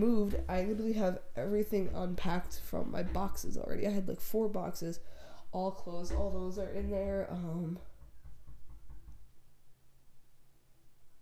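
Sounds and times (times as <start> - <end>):
low knocks on a floor or door: 0.0 - 4.1, 5.8 - 9.5
speech: 0.0 - 7.9
faint room hum: 0.0 - 11.1.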